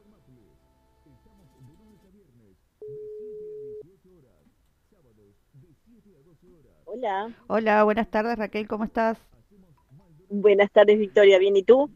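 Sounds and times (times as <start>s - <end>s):
telephone line tone while a call is being placed: 2.8s - 3.8s
speech: 5.6s - 9.4s, 10.3s - 11.9s.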